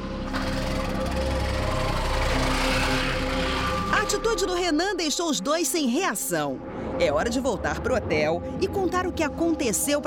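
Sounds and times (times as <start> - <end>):
motorcycle engine running: 0.0 - 4.4
speech: 4.1 - 10.0.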